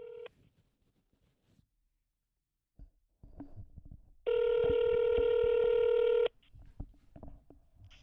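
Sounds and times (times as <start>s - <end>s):
phone line ringing tone: 0.0s - 0.3s, 4.3s - 6.3s.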